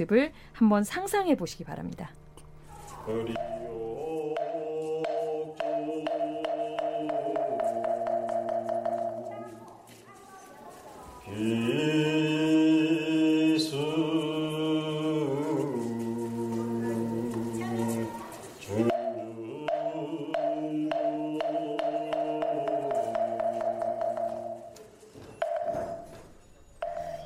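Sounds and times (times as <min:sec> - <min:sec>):
speech: 0:00.0 - 0:02.2, 0:03.1 - 0:03.7, 0:11.4 - 0:12.4
group of voices in Buddhist temple morning service chanting: 0:02.8 - 0:09.5, 0:11.2 - 0:24.7.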